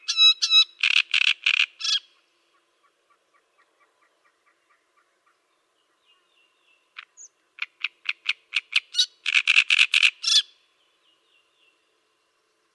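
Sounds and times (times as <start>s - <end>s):
great reed warbler song of grating croaky notes and high squeaks: 0.0s - 12.7s.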